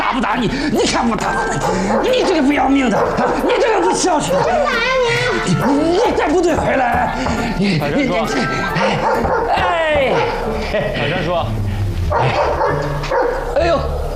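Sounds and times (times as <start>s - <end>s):
laughter: 0.0s - 12.8s
speech: 0.2s - 14.0s
dog barking and yipping excitedly: 1.7s - 6.1s, 9.0s - 9.6s, 12.1s - 13.5s.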